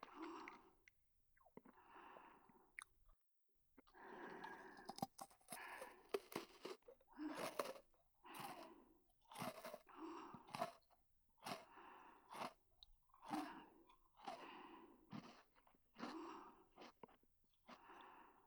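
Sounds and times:
crunchy chewing of a thin snack: 0:03.8 - 0:18.4.

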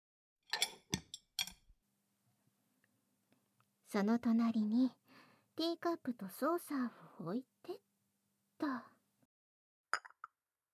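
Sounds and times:
knife and fork set down on a table beside antique plates: 0:00.5 - 0:01.6
speech: 0:03.9 - 0:05.0, 0:05.6 - 0:07.8.

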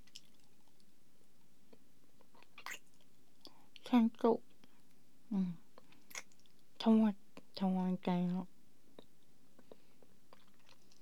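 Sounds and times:
crunchy food being chewed: 0:00.0 - 0:00.9, 0:01.7 - 0:03.1, 0:09.0 - 0:11.0
speech: 0:03.9 - 0:04.5, 0:05.3 - 0:05.6, 0:06.8 - 0:08.5.

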